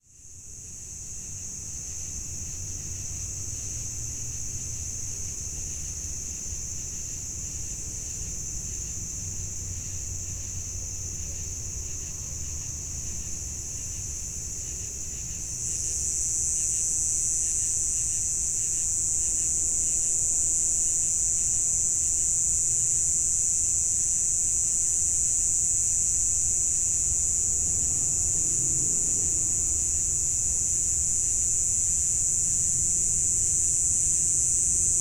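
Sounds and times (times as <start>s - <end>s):
insects in a cornfield on a summer evening in the Midwest US: 0.0s - 34.9s
very faint distant traffic: 26.3s - 33.5s.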